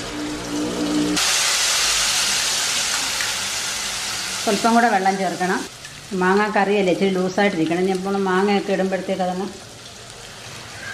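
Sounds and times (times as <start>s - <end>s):
chili sizzling in a pan of wilted ingredients for a mango curry: 0.0s - 10.9s
speech: 4.5s - 9.6s.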